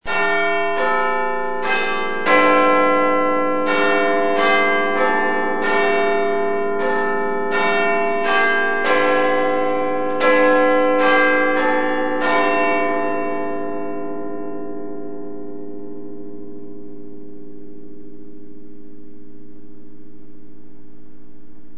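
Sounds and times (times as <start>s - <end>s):
clock bells striking the full hour: 0.1s - 16.9s.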